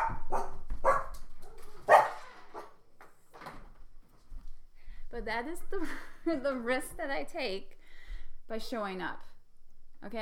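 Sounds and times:
dog barking: 0.0 - 2.8
speech: 5.2 - 7.8, 8.5 - 9.3, 10.0 - 10.1.

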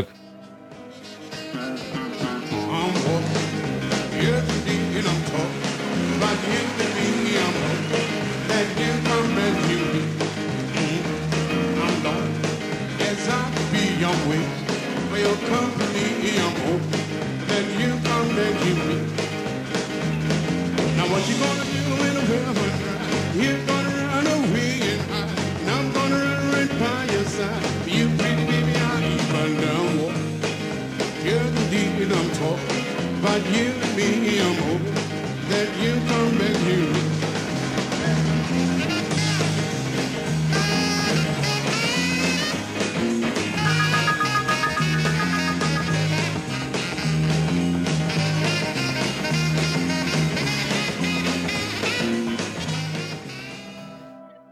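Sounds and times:
1950s rock and roll song with walking bass and piano: 0.0 - 54.3
speech: 1.5 - 2.0, 21.0 - 23.8, 32.1 - 37.1.

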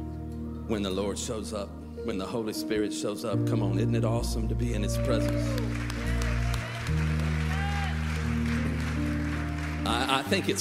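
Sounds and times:
speech: 0.7 - 6.0, 9.8 - 10.5
polite subdued audience applause: 5.0 - 10.5.

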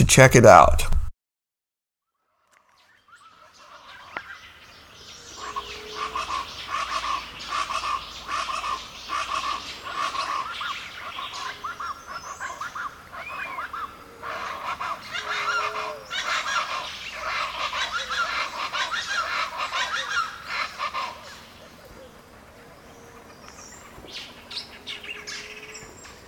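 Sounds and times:
speech: 0.0 - 0.9
outdoor bird calls with chirps and warbling notes: 2.2 - 26.2
steady outdoor ambience: 3.2 - 26.2.

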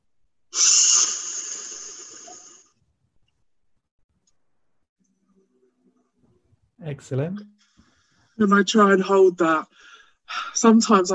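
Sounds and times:
sharp breath drawn in through an asthma reliever inhaler mouthpiece: 0.5 - 2.7
speech: 6.8 - 7.6, 8.4 - 11.1.

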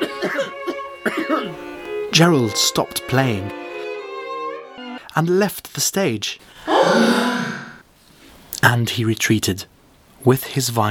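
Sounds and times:
several people coughing: 0.0 - 1.6
speech: 1.2 - 3.6, 5.2 - 7.5, 8.6 - 10.8.

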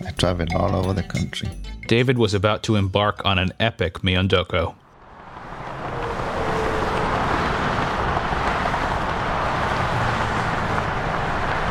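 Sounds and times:
speech: 0.2 - 4.8
heavy highway traffic roar on an overpass: 4.8 - 11.6
trucks rumbling past on a highway overpass: 4.8 - 11.6.

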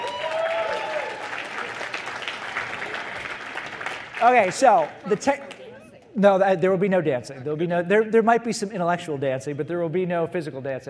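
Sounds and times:
audience applause at a management leadership talk: 0.0 - 5.6
speech: 4.2 - 5.5, 6.2 - 10.8.

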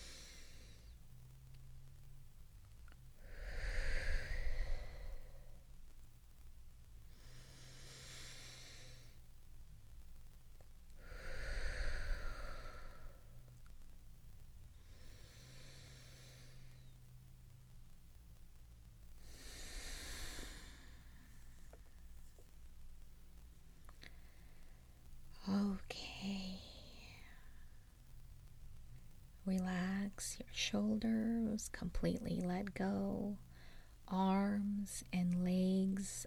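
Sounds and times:
slow deep breathing during a guided sound meditation: 0.0 - 1.0, 3.2 - 5.6, 7.1 - 9.3, 11.0 - 13.6, 14.7 - 17.1, 19.2 - 22.5, 33.4 - 34.0
speech: 29.5 - 33.4, 34.1 - 36.2.

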